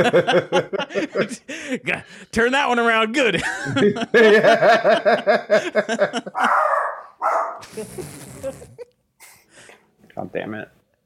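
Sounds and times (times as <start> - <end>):
laughter: 0.0 - 1.8, 3.4 - 6.8
speech: 0.0 - 8.9, 10.2 - 10.8
person's voice imitating a dog with barking yips: 6.4 - 8.6
rough breathy bursts of noise: 7.6 - 9.9.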